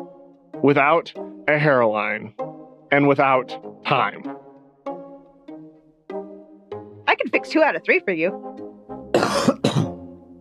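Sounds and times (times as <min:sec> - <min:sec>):
speech: 0:00.6 - 0:04.3, 0:07.4 - 0:08.5
harsh breathy coughs: 0:09.1 - 0:10.0.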